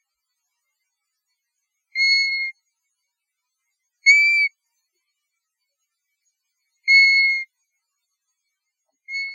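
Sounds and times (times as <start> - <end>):
European golden plover Pluvialis apricaria whistling calls: 2.0 - 2.5, 4.1 - 4.5, 6.9 - 7.5, 9.1 - 9.3.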